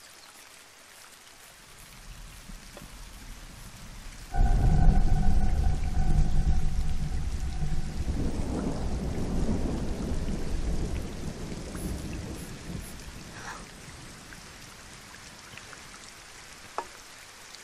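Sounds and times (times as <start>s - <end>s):
steady patter of rain: 0.0s - 17.6s
faint rumble of thunder under a cloudy sky: 1.8s - 15.5s.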